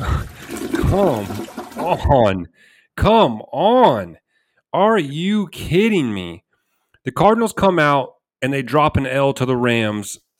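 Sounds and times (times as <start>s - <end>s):
toilet flush sound effect: 0.0s - 2.2s
voice-like warbling tone: 0.0s - 2.4s
speech: 0.9s - 6.4s, 7.0s - 10.2s.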